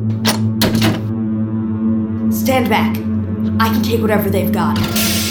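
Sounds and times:
door lock being worked open: 0.1 - 1.1
speech: 2.5 - 5.1.

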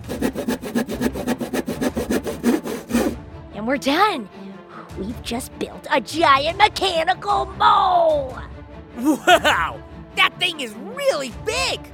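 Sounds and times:
handsaw sawing wood: 0.0 - 3.2
speech: 3.7 - 4.4, 5.0 - 11.9
laughter: 9.0 - 9.8.

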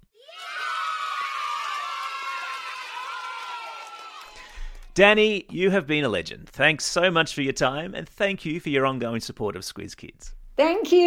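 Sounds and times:
loud crowd cheering and whooping: 0.1 - 4.8
dense wash of applause: 0.3 - 5.0
speech: 5.0 - 11.0.

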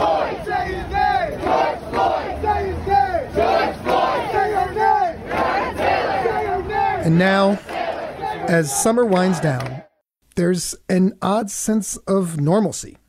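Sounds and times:
protest crowd yelling: 0.0 - 9.9
protest crowd chanting in New York: 0.0 - 10.0
speech: 7.0 - 7.8, 8.5 - 9.8, 10.4 - 13.0.

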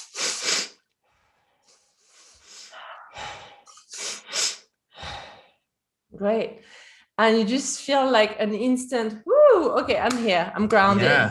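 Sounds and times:
sharp paired inhales through the nose in a guided breathing exercise: 0.0 - 0.8, 1.6 - 5.5
speech: 6.2 - 11.3.

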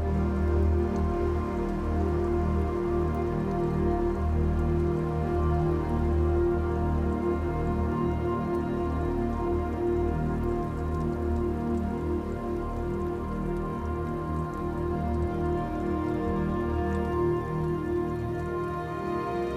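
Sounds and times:
dense heavy raindrop patter: 0.0 - 19.5.

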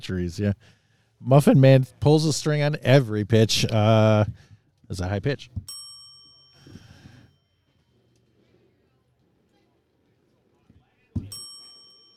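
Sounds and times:
speech: 0.0 - 5.7
bell struck with a sharp loud ring: 5.6 - 8.0, 11.2 - 12.1.

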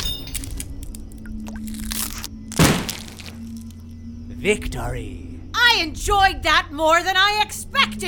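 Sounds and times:
Gauss cannon firing a tungsten rod: 2.5 - 3.2
heavy thud: 2.5 - 3.3
speech: 4.5 - 8.0.

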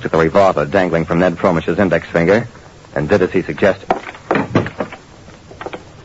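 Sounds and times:
speech: 0.0 - 4.0
apartment door being pushed shut: 3.9 - 5.0.

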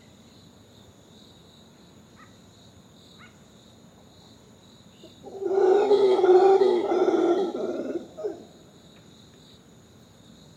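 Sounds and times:
female howler monkey howl at dawn: 5.2 - 8.5.

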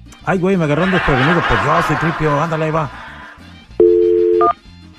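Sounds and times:
speech: 0.2 - 3.0
laughter: 0.7 - 3.5
steady telephone dial tone: 3.8 - 4.6.

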